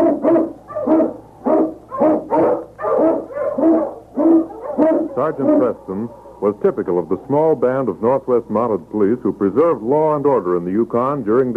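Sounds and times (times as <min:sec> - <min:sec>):
Eskimo lead sled dog barking and howling: 0:00.0 - 0:06.6
speech: 0:05.3 - 0:11.5.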